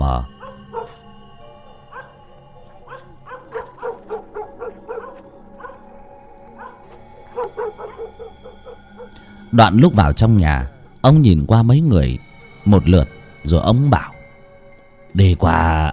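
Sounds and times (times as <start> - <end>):
steady tonal hum: 0.0 - 15.9
two dogs barking: 0.4 - 1.2, 1.9 - 9.3
speech: 9.5 - 14.1, 15.2 - 15.9.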